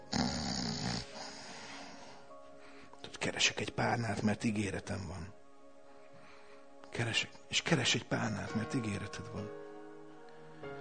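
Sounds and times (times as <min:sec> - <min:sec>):
person imitating a single loud snore: 0:00.1 - 0:01.3
speech: 0:03.2 - 0:05.4, 0:07.0 - 0:09.6.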